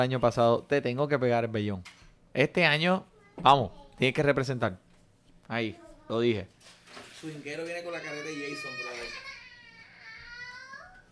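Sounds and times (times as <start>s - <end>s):
speech: 0.0s - 4.8s, 5.5s - 9.2s
child crying: 7.9s - 11.1s.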